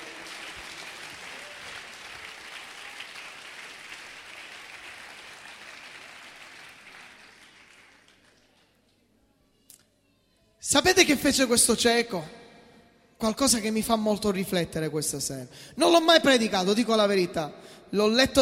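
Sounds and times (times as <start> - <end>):
audience at a sermon applauding: 0.0 - 8.8
speech: 10.7 - 12.4, 13.2 - 18.4.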